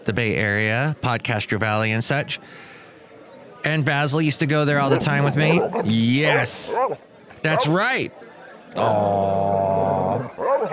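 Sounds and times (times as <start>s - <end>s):
speech: 0.1s - 2.8s, 3.6s - 10.7s
old dog barking: 4.9s - 5.9s, 6.7s - 7.8s, 10.3s - 10.7s.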